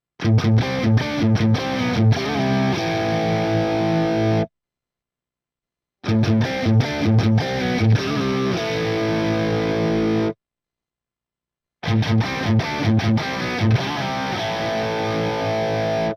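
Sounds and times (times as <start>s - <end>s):
crunchy electric guitar through split coil humbucker pickup: 0.2s - 4.5s, 6.0s - 10.4s, 11.8s - 16.1s.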